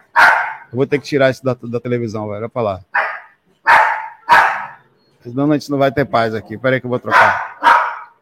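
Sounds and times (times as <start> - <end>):
dog barking at a cat: 0.0 - 0.7, 2.9 - 4.9, 7.1 - 8.2
speech: 0.7 - 3.0, 5.2 - 7.4.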